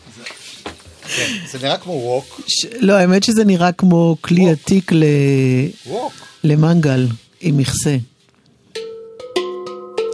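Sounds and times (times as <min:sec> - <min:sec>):
speech: 0:01.1 - 0:08.1
handpan-style metal drum notes ringing: 0:08.7 - 0:10.1.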